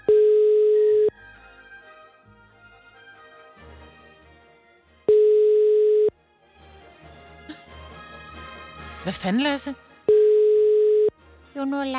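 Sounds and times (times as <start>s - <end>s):
telephone line tone for an unavailable number: 0.0s - 1.1s, 5.1s - 6.1s, 10.1s - 11.1s
speech: 9.1s - 9.9s, 11.6s - 11.9s.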